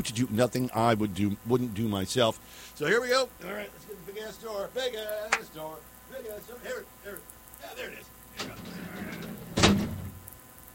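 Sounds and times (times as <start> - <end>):
speech: 0.0 - 9.4
heavy door grinding and rumbling, then shutting with a deep thud: 8.4 - 10.2.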